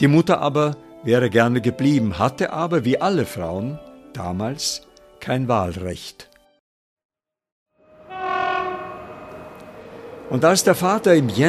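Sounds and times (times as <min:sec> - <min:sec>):
speech: 0:00.0 - 0:06.3, 0:10.3 - 0:11.4
train horn at a railway station: 0:07.8 - 0:10.4.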